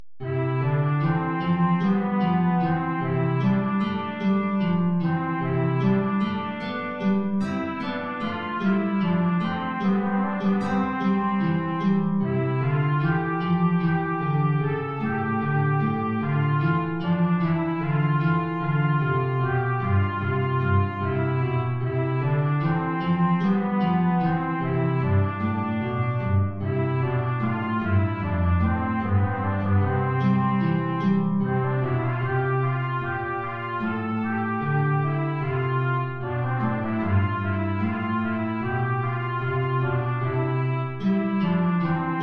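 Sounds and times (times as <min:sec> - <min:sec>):
low guitar: 0:00.2 - 0:42.2
trumpet in Bb playing an aria: 0:00.2 - 0:42.2.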